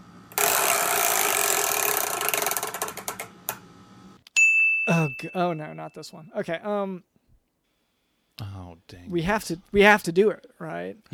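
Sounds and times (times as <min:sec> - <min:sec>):
chore wheel spinning with ratcheting whir and clicks: 0:00.3 - 0:03.3
speech: 0:04.9 - 0:07.1, 0:08.9 - 0:11.1.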